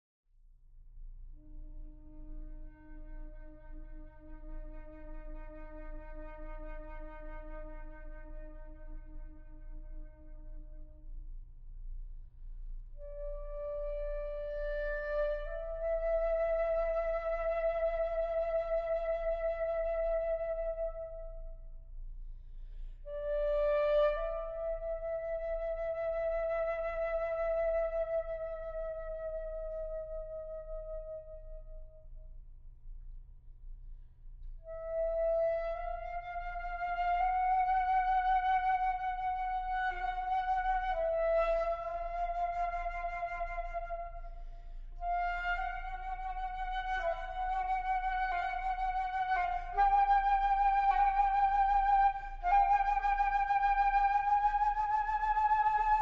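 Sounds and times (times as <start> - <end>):
solo flute: 1.2 - 32.4, 34.4 - 56.0.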